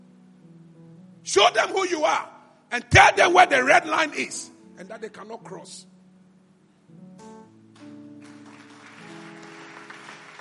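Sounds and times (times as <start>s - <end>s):
speech: 1.3s - 5.9s
audience clapping as a clap offering: 7.7s - 10.3s.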